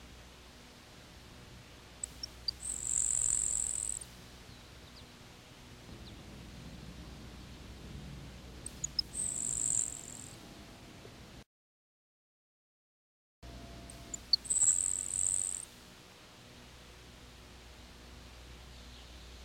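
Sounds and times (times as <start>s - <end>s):
soft steady background hiss: 0.0s - 11.4s, 13.5s - 19.4s
grasshopper sparrow song with thin insect-like buzzes: 2.0s - 6.3s, 8.7s - 10.4s, 13.5s - 15.9s, 18.1s - 19.4s.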